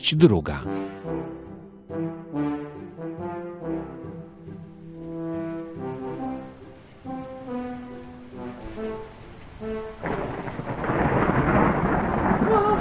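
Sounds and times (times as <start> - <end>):
speech: 0.0 - 1.2
dramatic sustained musical chords: 0.2 - 12.3
rushing rain: 2.4 - 12.7
loud broad rumble of thunder: 4.3 - 12.7.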